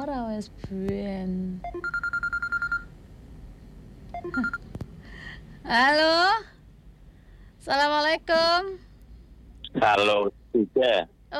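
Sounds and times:
speech: 0.1s - 2.2s, 4.2s - 4.6s, 5.6s - 6.5s, 7.6s - 8.8s, 9.8s - 11.3s
telephone ringing with rapid high electronic beeps: 1.6s - 2.9s, 4.2s - 4.7s.

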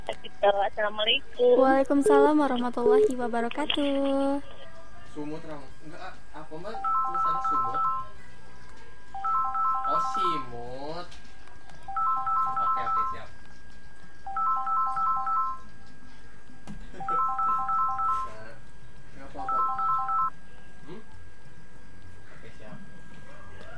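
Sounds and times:
speech: 0.4s - 7.8s
telephone ringing with an electronic ringtone: 6.8s - 8.1s, 9.2s - 10.4s, 11.9s - 13.2s, 14.3s - 15.6s, 17.0s - 18.4s, 19.4s - 20.3s.

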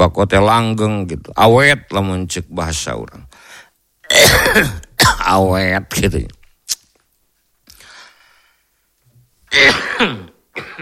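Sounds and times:
speech: 0.0s - 3.5s, 4.1s - 6.8s, 9.5s - 10.2s
person coughing: 4.1s - 5.3s, 9.5s - 10.8s.

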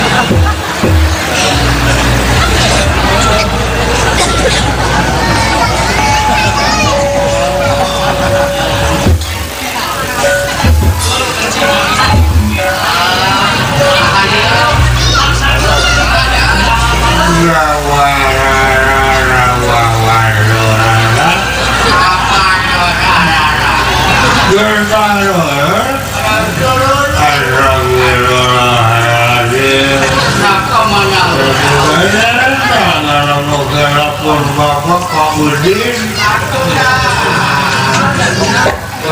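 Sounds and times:
laughter: 0.0s - 39.1s
motorcycle engine droning: 0.0s - 39.1s
voices and crowd babble: 0.0s - 39.1s.

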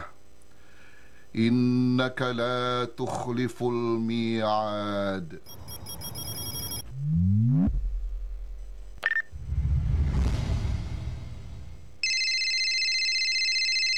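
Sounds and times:
speech: 1.4s - 5.8s
brief beep: 5.5s - 6.8s
electronic telephone ringtone: 5.5s - 6.8s, 12.0s - 13.9s
swooping sweeps: 5.5s - 12.0s
rumbling whoosh: 5.6s - 12.0s.

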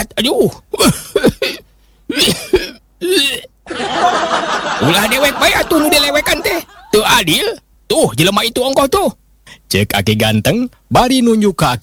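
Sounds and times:
speech: 0.0s - 1.3s, 7.2s - 11.8s
old man coughing: 0.8s - 3.6s
laughter: 3.7s - 7.0s.

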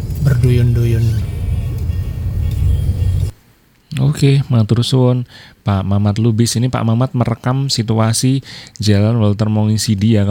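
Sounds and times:
road sweeper truck engine rumble passing on a street: 0.0s - 3.4s
speech: 0.3s - 1.3s, 4.0s - 10.2s.

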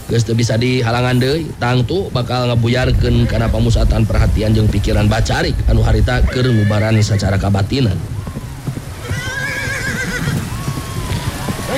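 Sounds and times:
two horses galloping: 0.0s - 11.7s
speech: 0.1s - 8.2s
horses whinnying: 6.1s - 11.7s.

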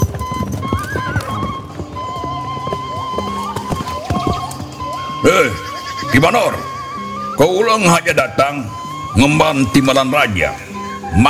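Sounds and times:
horse hooves clip-clopping: 0.0s - 11.2s
horses whinnying and neighing: 0.0s - 11.2s
speech: 5.3s - 6.7s, 7.4s - 11.2s.

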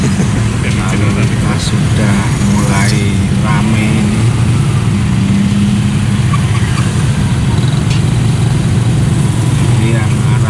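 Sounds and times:
laughter: 0.0s - 4.4s, 9.6s - 10.4s
constant low drone: 0.0s - 10.4s
motorcycle engine idling in dense morning street traffic in Mijen Semarang Indonesia: 0.0s - 10.4s.

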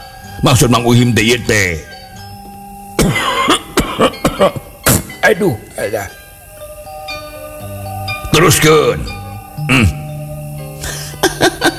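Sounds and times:
speech: 0.4s - 1.9s, 4.0s - 4.6s, 5.3s - 6.2s, 8.4s - 10.0s
person coughing loudly: 3.0s - 4.6s
throaty sound: 9.0s - 10.1s.

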